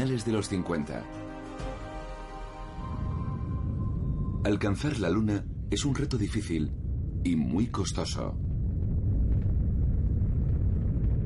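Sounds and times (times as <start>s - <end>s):
speech: 0.2s - 1.3s, 4.4s - 8.5s
American or Soviet rocket exploding with deep heavy rumbling roar: 2.8s - 11.2s.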